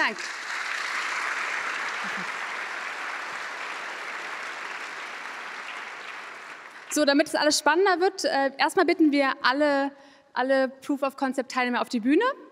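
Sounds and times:
speech: 0.0s - 0.4s, 6.9s - 12.4s
audience applause: 0.0s - 7.0s.

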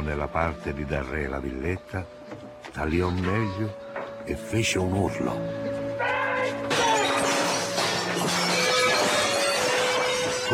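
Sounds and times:
speech: 0.1s - 6.1s
glass window panes being smashed on a villa ground floor: 6.7s - 10.5s.

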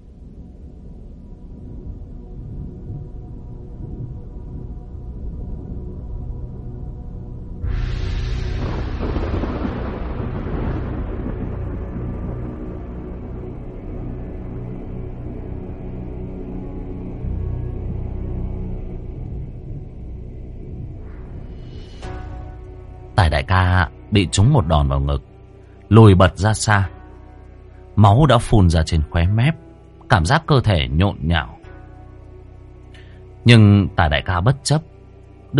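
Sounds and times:
steady low roar of gusting storm wind: 0.0s - 23.2s
loud crashing rumble of thunder: 0.0s - 33.6s
speech: 24.2s - 25.3s, 25.9s - 27.0s, 28.0s - 31.5s, 33.4s - 34.9s.

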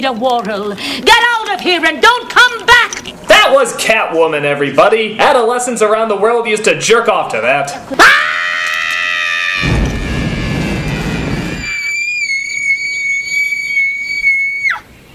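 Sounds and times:
speech: 0.0s - 8.1s
woman screaming high-pitched: 8.0s - 14.9s
loud rushing burst of noise: 9.5s - 12.5s.

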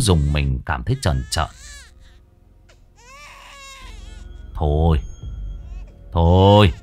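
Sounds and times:
speech: 0.0s - 1.6s, 4.6s - 5.1s, 6.1s - 6.8s
child crying at night in the mountains: 0.9s - 2.2s, 3.0s - 4.3s.

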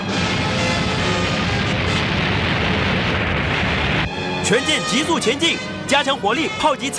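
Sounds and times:
explosion of liquid helium in cargo containers: 0.0s - 4.3s
speech: 4.5s - 6.9s.

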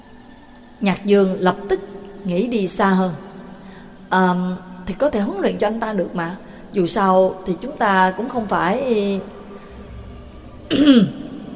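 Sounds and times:
speech: 0.8s - 3.3s, 4.1s - 9.4s, 10.7s - 11.2s
gruff throat clearing heard through a device: 10.7s - 11.2s.

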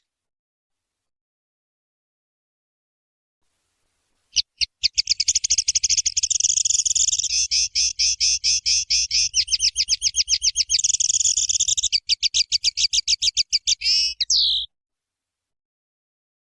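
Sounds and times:
streaked spiderhunter song of high clipped notes: 4.3s - 14.7s.

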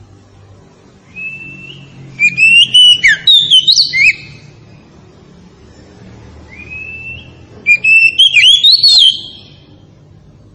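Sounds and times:
Tretes variety Oriental magpie-robin singing: 1.1s - 4.5s, 6.5s - 9.7s.

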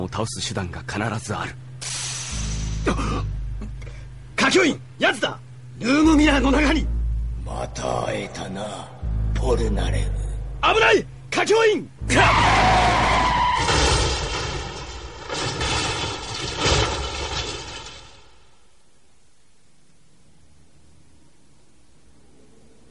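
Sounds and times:
speech: 0.0s - 1.6s, 2.8s - 3.7s, 4.5s - 12.8s
quick burst of sharp hits: 1.8s - 18.6s
car tires skidding under sudden emergency braking: 12.0s - 14.1s.

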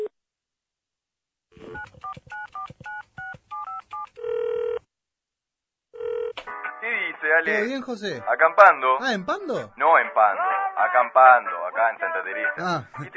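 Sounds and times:
telephone number dialed with touch-tone beeps: 1.6s - 4.8s
longer steady phone tones: 1.6s - 4.9s, 6.0s - 6.4s
speech: 7.4s - 13.1s.

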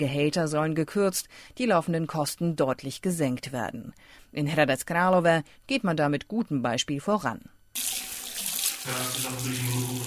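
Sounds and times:
speech: 0.0s - 7.9s, 8.8s - 10.0s
ice-cold tap water gushing from a faucet as hands are washed: 7.8s - 10.0s.

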